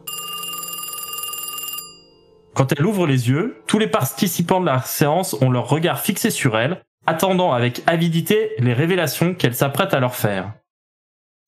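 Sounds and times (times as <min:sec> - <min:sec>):
telephone bell ringing shrilly: 0:00.0 - 0:02.5
speech: 0:02.6 - 0:10.6.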